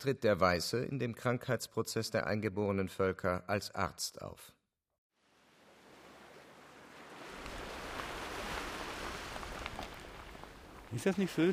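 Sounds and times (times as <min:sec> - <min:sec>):
speech: 0:00.0 - 0:04.6, 0:10.9 - 0:11.5
ocean waves breaking on the shore: 0:05.2 - 0:11.5.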